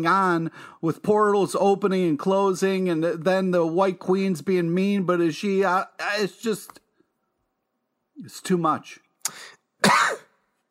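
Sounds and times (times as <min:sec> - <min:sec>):
speech: 0:00.0 - 0:06.8, 0:08.2 - 0:10.2
person coughing: 0:09.3 - 0:10.4.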